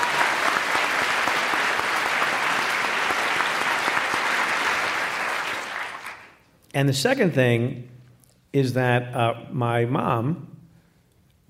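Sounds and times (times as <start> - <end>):
live audience applauding: 0.0 - 6.4
speech: 6.8 - 7.9, 8.5 - 10.5.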